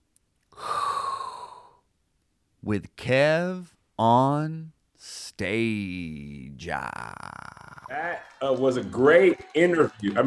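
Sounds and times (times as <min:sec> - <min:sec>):
deep breath inhaled: 0:00.6 - 0:01.8
speech: 0:02.6 - 0:10.2.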